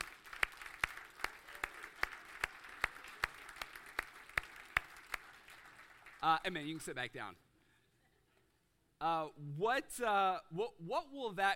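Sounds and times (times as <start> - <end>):
one pair of hands clapping sharply: 0.0 - 6.9
audience applauding: 0.0 - 7.2
speech: 6.2 - 7.5, 9.0 - 11.5.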